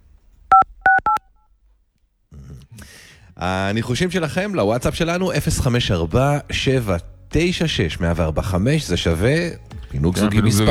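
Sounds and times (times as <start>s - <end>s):
telephone keypad tones entering a phone code: 0.5s - 1.2s
speech: 3.4s - 10.7s
laughter: 5.9s - 10.7s.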